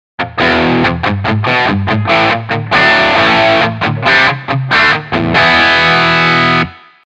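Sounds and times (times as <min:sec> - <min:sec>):
guitar through screamer distortion: 0:00.2 - 0:07.0.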